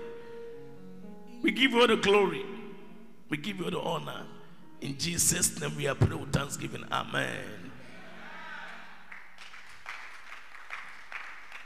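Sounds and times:
speech: 0:01.4 - 0:02.5, 0:03.3 - 0:07.7
audience clapping: 0:09.1 - 0:11.6.

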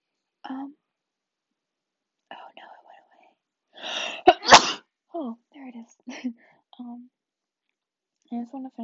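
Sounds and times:
soft whispery breaths: 0:02.3 - 0:04.3, 0:05.8 - 0:06.8
person sneezing: 0:03.8 - 0:04.8
speech: 0:08.3 - 0:08.8.

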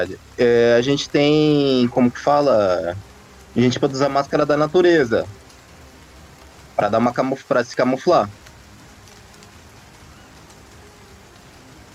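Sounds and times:
speech: 0:00.0 - 0:05.4, 0:06.8 - 0:08.4
steady rain falling: 0:00.0 - 0:11.9.

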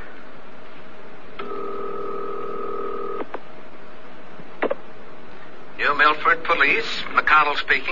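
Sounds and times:
telephone line tone on a payphone call: 0:01.4 - 0:03.3
speech: 0:06.0 - 0:07.8.

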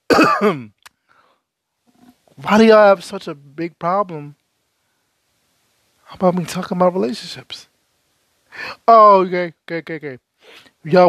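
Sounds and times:
throat clearing: 0:00.1 - 0:00.8
speech: 0:00.2 - 0:00.8, 0:02.4 - 0:04.4, 0:06.1 - 0:07.7, 0:08.5 - 0:11.0
faint click: 0:00.8 - 0:01.0.

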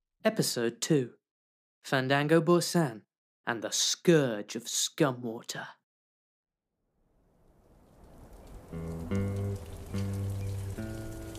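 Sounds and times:
speech: 0:00.2 - 0:01.2, 0:01.8 - 0:05.8, 0:08.7 - 0:09.2
light warm desert rain on saloon windows: 0:07.3 - 0:11.3
low sustained musical tones: 0:08.7 - 0:11.3.

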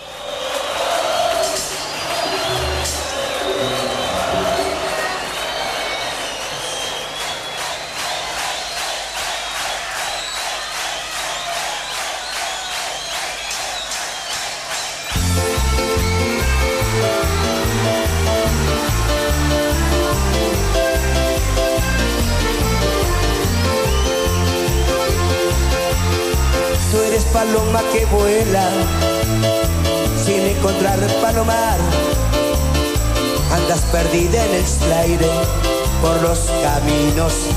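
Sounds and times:
crowd cheering and shouting: 0:00.0 - 0:37.5
loud bass-heavy band playing: 0:01.5 - 0:06.8, 0:14.7 - 0:37.5
solo singer singing: 0:26.8 - 0:29.1, 0:30.2 - 0:32.2, 0:33.5 - 0:37.5.

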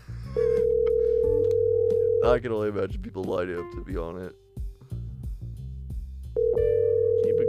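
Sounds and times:
electronic ringback tone on an outgoing phone call: 0:00.5 - 0:02.3, 0:06.4 - 0:07.4
speech: 0:02.2 - 0:04.4.

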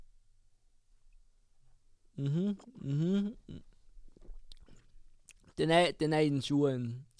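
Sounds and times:
speech: 0:02.2 - 0:03.7, 0:05.6 - 0:07.1
person sipping wine: 0:02.2 - 0:05.6.

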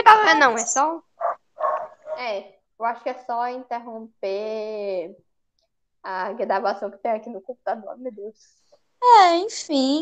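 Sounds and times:
speech: 0:00.3 - 0:01.1, 0:02.2 - 0:05.3, 0:06.0 - 0:10.0
dog barking: 0:01.2 - 0:02.2.

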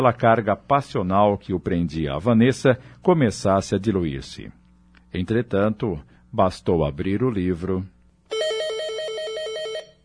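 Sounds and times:
speech: 0:00.0 - 0:08.0
telephone ringing with a two-tone trill: 0:08.3 - 0:10.0.

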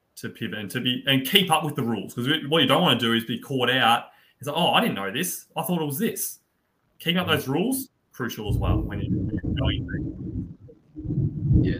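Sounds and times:
speech: 0:00.2 - 0:06.4, 0:07.0 - 0:10.3, 0:11.1 - 0:11.7
rolling thunder from a thunderstorm outside: 0:08.5 - 0:11.7.

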